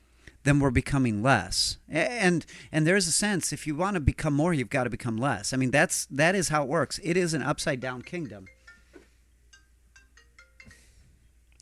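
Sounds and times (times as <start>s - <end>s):
speech: 0.4s - 8.6s
phone ringtone of short electronic tones: 7.7s - 11.2s.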